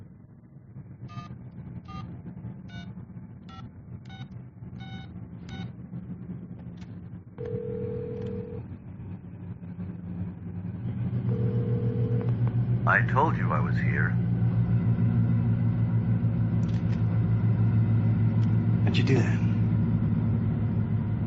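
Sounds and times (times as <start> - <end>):
low rumble: 0.0 - 21.2
longer steady telephone tone: 7.4 - 8.6, 11.3 - 12.3
speech: 12.9 - 14.2, 19.0 - 19.4.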